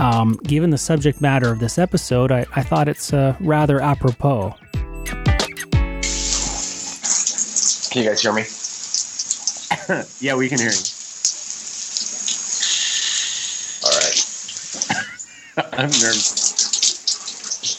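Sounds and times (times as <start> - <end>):
speech: 0.1 - 5.2, 7.9 - 8.6, 9.8 - 10.9, 15.8 - 16.4
shower water running: 5.8 - 17.7
people laughing: 14.9 - 16.1.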